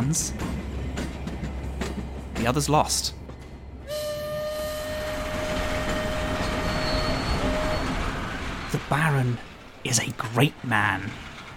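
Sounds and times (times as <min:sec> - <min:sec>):
train rumbling along the tracks: 0:00.0 - 0:11.5
speech: 0:00.1 - 0:00.6, 0:02.4 - 0:03.2, 0:08.9 - 0:11.3
long sustained train horn or whistle: 0:03.8 - 0:08.4.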